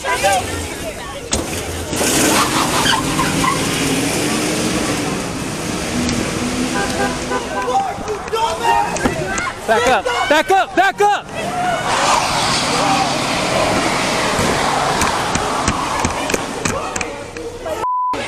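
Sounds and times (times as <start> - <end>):
truck engine roaring and speeding off: 0.0 - 17.8
crowd of people shouting and yelling: 6.7 - 17.8
speech: 9.7 - 11.8.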